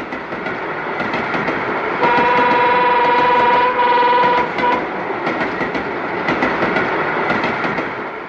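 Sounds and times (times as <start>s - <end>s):
train wagons clacking over rail joints: 0.0s - 8.2s
train horn blaring: 2.0s - 4.9s.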